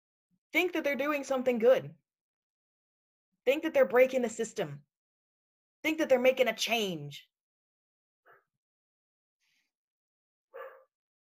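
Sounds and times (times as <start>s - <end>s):
speech: 0.5s - 2.0s, 3.4s - 4.9s, 5.8s - 7.3s
pet dog barking with short sharp yaps: 10.5s - 11.0s.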